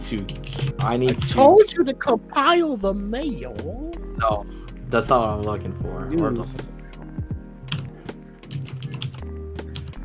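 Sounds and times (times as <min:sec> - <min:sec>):
speech: 0:00.1 - 0:06.8
forceful typing on a computer keyboard: 0:00.2 - 0:01.3, 0:08.5 - 0:10.0.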